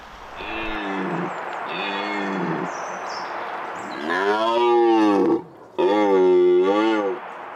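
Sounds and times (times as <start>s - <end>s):
outdoor noise: 0.0s - 7.5s
red deer stag roaring during the rut: 0.4s - 2.7s, 3.8s - 7.2s.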